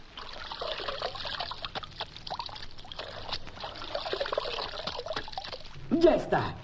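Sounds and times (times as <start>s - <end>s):
water poured onto a horse's legs: 0.0s - 5.8s
speech: 6.0s - 6.6s.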